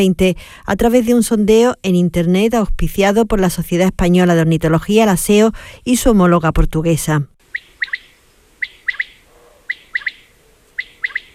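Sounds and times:
speech: 0.0s - 8.0s
male common quail song calling to females: 7.4s - 11.3s.

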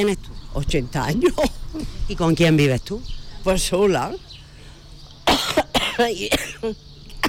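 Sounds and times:
speech: 0.0s - 1.5s, 2.1s - 4.3s, 6.0s - 6.9s
unwell 80-year-old woman coughing on a street in Fuerte del Rey: 5.3s - 7.2s.

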